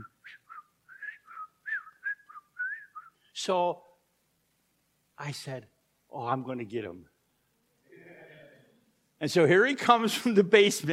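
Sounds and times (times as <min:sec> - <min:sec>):
person whistling imitating a supervisor's distinctive whistle: 0:00.0 - 0:03.3
speech: 0:03.4 - 0:03.9, 0:05.2 - 0:07.1, 0:09.2 - 0:10.9.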